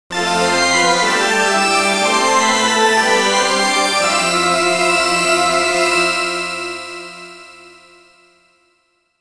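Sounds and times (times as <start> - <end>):
organ playing: 0.2 - 6.6.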